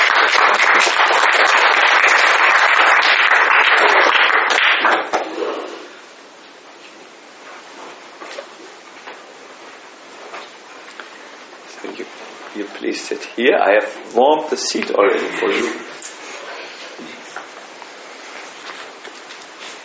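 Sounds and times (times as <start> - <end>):
audience applause: 0.0 - 5.4
speech: 13.4 - 16.0.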